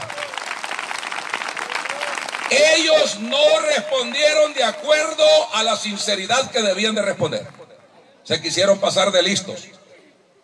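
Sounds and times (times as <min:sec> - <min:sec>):
church congregation applauding: 0:00.0 - 0:05.5
speech: 0:02.5 - 0:07.6, 0:08.3 - 0:09.8.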